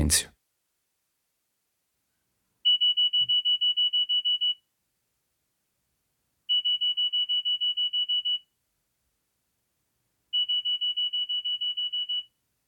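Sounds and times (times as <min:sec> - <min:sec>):
speech: 0:00.1 - 0:00.3
old Nokia style phone alarm clock beeping: 0:02.7 - 0:04.6, 0:06.5 - 0:08.4, 0:10.4 - 0:12.3.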